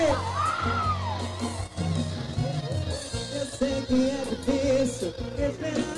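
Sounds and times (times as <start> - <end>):
person whooping: 0.0 - 1.8
crowd yelling and whooping: 0.0 - 2.9
speech: 3.9 - 5.8.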